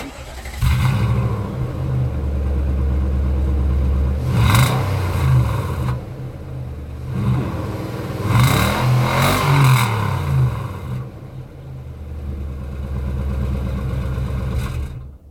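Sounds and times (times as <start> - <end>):
truck ignition switching off: 0.0 - 2.0
truck engine idling and revving with rattling: 0.0 - 15.2.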